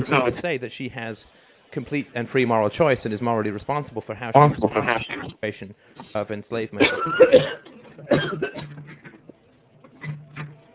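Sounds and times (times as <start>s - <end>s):
speech: 0.0s - 8.8s
person coughing harshly: 6.8s - 9.2s.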